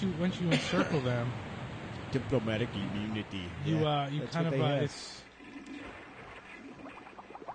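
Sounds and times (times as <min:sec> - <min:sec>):
speech: 0:00.0 - 0:01.5, 0:02.1 - 0:05.3
rushing gurgling water sound effect in a computer game: 0:05.3 - 0:07.5.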